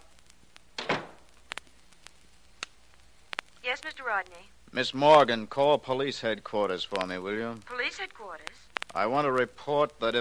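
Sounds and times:
back door opening and closing: 0.8 - 1.3
speech: 3.7 - 10.1.

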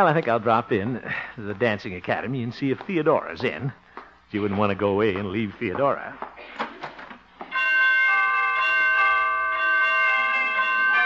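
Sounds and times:
speech: 0.0 - 6.6
door chimes ringing: 7.5 - 11.0.

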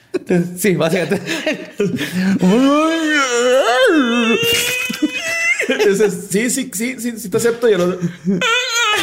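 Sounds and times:
laughter: 0.0 - 3.2, 3.9 - 6.7, 7.5 - 9.0
speech: 0.3 - 9.0
voice imitating harsh guttural moans and groans of a creature: 2.2 - 5.2.

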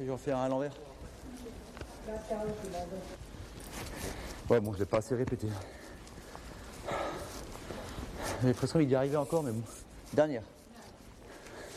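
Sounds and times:
speech: 0.0 - 1.5, 2.1 - 5.8, 8.4 - 10.6
rustling noise: 0.8 - 11.7
horse hooves thudding on the ground during a training session: 1.5 - 3.9.

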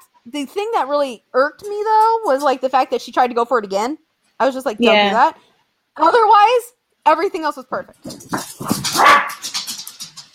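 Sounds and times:
speech: 0.2 - 9.5
dogs barking: 8.3 - 10.0.

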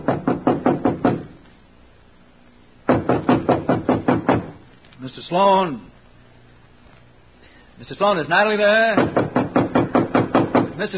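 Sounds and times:
firm rapid knocking on a door: 0.0 - 1.3, 2.9 - 4.6, 9.0 - 10.8
speech: 5.1 - 5.9, 7.8 - 9.1, 10.8 - 10.9.

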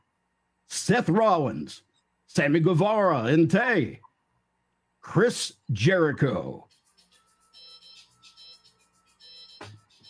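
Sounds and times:
speech: 0.9 - 4.1, 5.0 - 6.7
work phone ringtone playing an electronic melody upstairs: 6.8 - 10.0.

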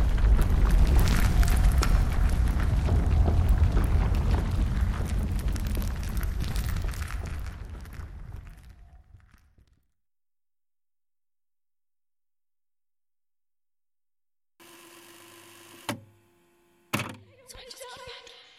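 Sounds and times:
ceiling caving in with heavy rumbling crash: 0.0 - 9.7
scattered cracking debris: 0.0 - 9.9.

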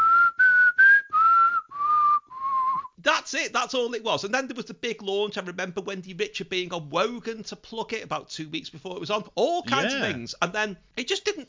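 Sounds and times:
person whistling a short tune: 0.0 - 3.0
speech: 3.3 - 11.4.

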